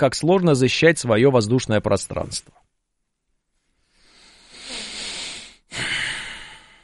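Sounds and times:
speech: 0:00.0 - 0:02.7
heavy breaths blown straight into a microphone: 0:03.8 - 0:06.8.

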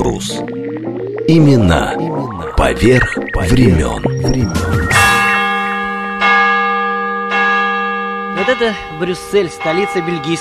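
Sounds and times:
speech: 0:00.1 - 0:04.9, 0:08.5 - 0:10.3
Russian Orthodox church bells ringing in Brussels Belgium: 0:04.9 - 0:10.3.

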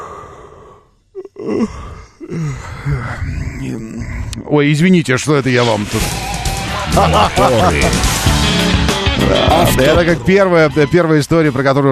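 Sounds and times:
person giving a long drawn-out yawn: 0:00.0 - 0:04.0
speech: 0:01.4 - 0:06.3, 0:06.9 - 0:11.9
laughter: 0:06.0 - 0:10.1.

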